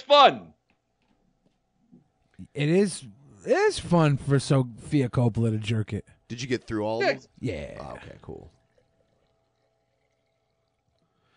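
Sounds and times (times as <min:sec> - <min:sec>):
speech: 0:00.0 - 0:00.6, 0:02.6 - 0:08.6
iced tea pouring into a cup: 0:07.4 - 0:11.3.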